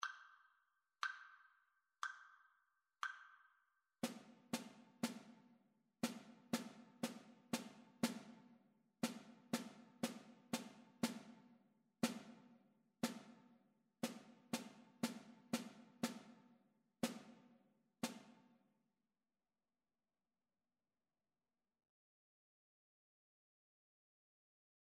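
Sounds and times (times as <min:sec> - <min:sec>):
rhythmic dictation exercise: 0:04.0 - 0:18.5.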